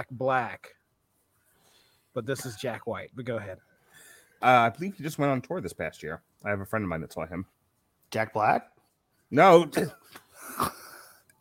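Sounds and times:
speech: 0.0s - 0.8s, 2.2s - 3.7s, 4.4s - 10.8s
short raspy wheezy cough: 9.8s - 11.3s.

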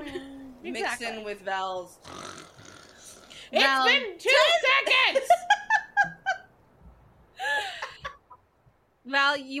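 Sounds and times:
speech: 0.7s - 2.3s, 3.5s - 5.4s, 9.1s - 9.5s
voice imitating loud goose honk snores: 2.0s - 3.5s.

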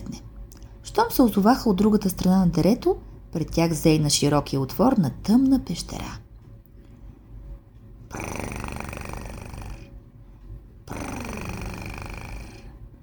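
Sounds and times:
speech: 1.0s - 6.2s
very large cat snoring or purring: 8.1s - 10.0s, 10.8s - 12.9s.

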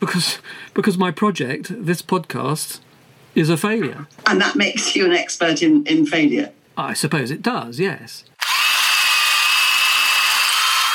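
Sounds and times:
speech: 0.0s - 8.3s
neighbour's power drill running: 8.4s - 10.9s.

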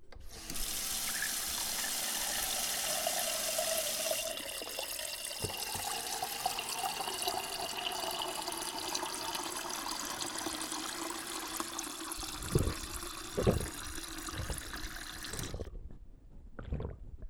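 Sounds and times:
water running from a tap: 0.3s - 15.7s.

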